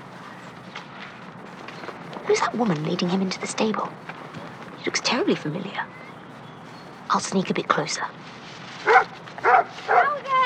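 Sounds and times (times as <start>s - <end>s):
speech: 2.3s - 4.2s, 4.8s - 6.0s, 7.1s - 8.4s
dog barking: 8.8s - 10.4s.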